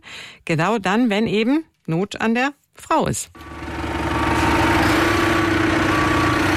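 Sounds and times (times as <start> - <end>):
speech: 0.5 - 3.6
tractor engine idling while reversing: 3.4 - 6.5.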